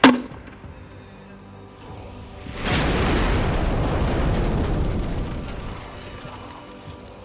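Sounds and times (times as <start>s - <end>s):
missile launch crack and rising whoosh: 2.2s - 6.6s
armored vehicle explosion: 2.3s - 7.0s.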